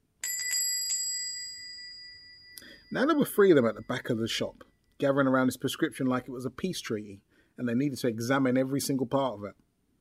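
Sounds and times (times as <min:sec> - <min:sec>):
shop door bell jingling: 0:00.2 - 0:04.3
speech: 0:02.9 - 0:09.6.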